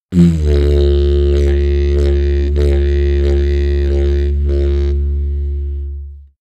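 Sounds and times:
slow didgeridoo jump: 0.0 - 6.3.

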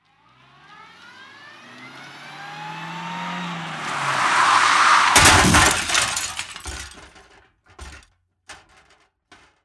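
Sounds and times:
car crash: 2.9 - 9.5.

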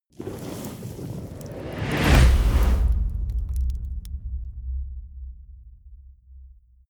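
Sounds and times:
fire torch igniting with whoosh: 0.1 - 4.9.

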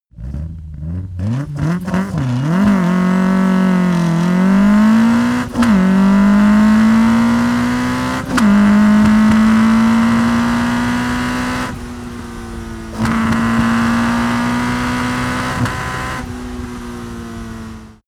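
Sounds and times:
Opel Kadett car accelerating fast: 0.1 - 18.0
Opel Kadett car gear shift: 0.4 - 10.6.

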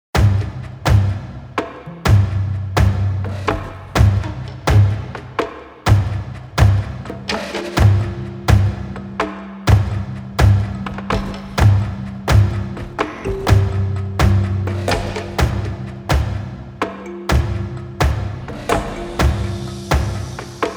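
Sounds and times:
percussion groove: 0.1 - 20.7
marimba groove: 3.3 - 20.7.

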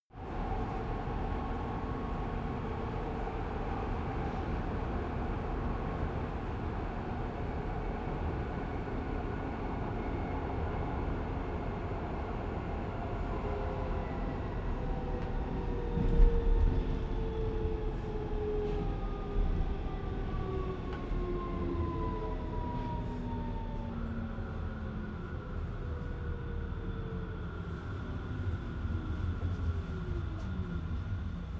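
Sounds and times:
subway train decelerating heard from the interior: 0.2 - 31.5.

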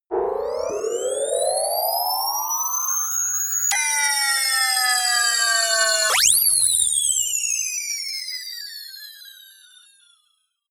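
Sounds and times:
rising and falling sweeps and swells: 0.0 - 2.9, 3.7 - 6.5.

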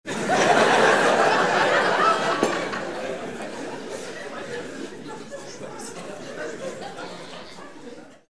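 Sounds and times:
laughter: 0.1 - 8.3
table noise: 2.3 - 3.0.

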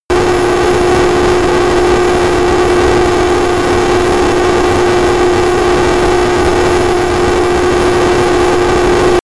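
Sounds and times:
Fulcrum military jet turbine at full power close: 0.1 - 9.2.

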